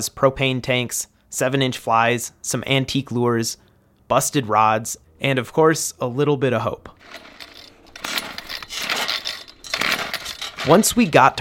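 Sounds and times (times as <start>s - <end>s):
speech: 0.0s - 7.3s, 10.6s - 11.4s
auger drilling test holes through lake ice: 7.0s - 11.1s.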